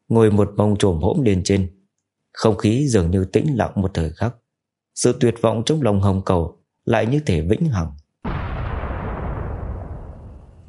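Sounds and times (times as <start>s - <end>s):
speech: 0.1s - 4.4s, 5.0s - 8.0s
loud massive explosion: 8.2s - 10.6s.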